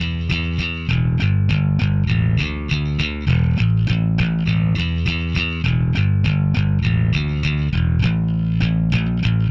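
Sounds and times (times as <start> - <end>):
indie rock bass line in D minor: 0.0 - 9.4.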